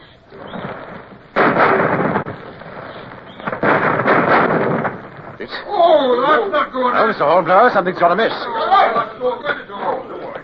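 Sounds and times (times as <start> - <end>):
muzzle-loading naval cannon aboard ship firing cannonballs: 0.3 - 5.7
speech: 5.4 - 10.0
laughter: 8.2 - 10.4.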